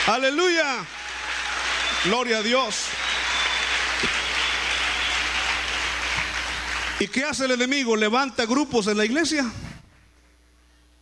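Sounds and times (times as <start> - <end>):
audience applauding: 0.0 - 7.2
speech: 0.1 - 1.0, 2.0 - 3.1, 7.0 - 9.6.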